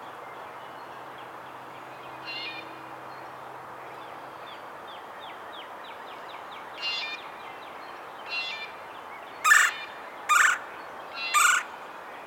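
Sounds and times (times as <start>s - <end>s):
red-bellied woodpecker Melanerpes carolinus harsh rolling calls: 9.4s - 10.6s, 11.3s - 11.7s.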